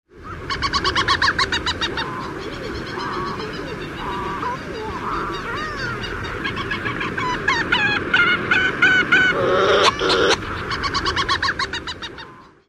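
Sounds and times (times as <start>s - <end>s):
birds calling in a colony: 0.2s - 12.6s.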